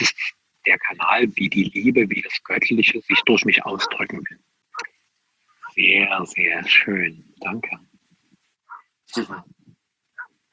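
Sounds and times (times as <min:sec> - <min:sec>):
speech: 0:00.9 - 0:04.9, 0:05.8 - 0:07.9, 0:09.1 - 0:09.6
dog barking and yipping in the background: 0:03.1 - 0:04.1, 0:08.7 - 0:09.5.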